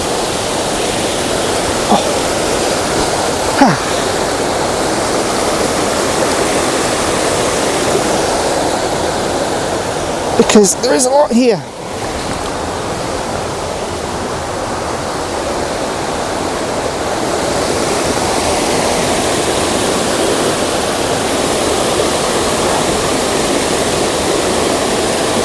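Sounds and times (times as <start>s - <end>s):
large waterfall roaring: 0.0s - 25.4s
speech: 10.5s - 11.8s.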